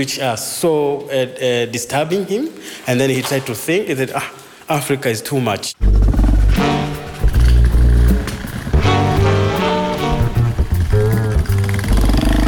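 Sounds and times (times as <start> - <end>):
speech: 0.0 - 6.7
motorcycle engine accelerating and shifting gears while riding: 5.8 - 12.4.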